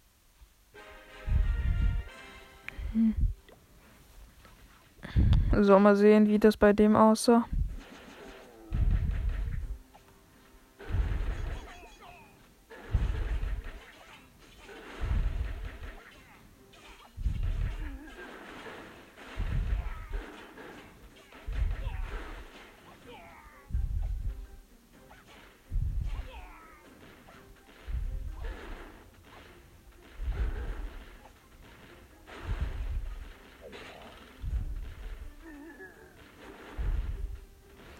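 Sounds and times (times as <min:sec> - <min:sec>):
busy video game noise: 0:00.0 - 0:37.9
speech: 0:03.0 - 0:03.3, 0:05.6 - 0:07.6
video game cannons firing deep booming shots: 0:07.7 - 0:09.8, 0:10.8 - 0:12.0, 0:12.7 - 0:16.1, 0:16.9 - 0:22.9, 0:25.3 - 0:37.9.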